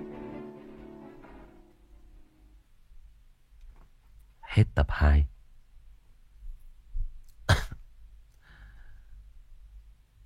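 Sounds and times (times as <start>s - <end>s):
speech: 4.6s - 5.3s
person coughing: 7.5s - 7.9s
breathy exhale: 8.4s - 9.2s
faint breaths: 8.4s - 9.4s.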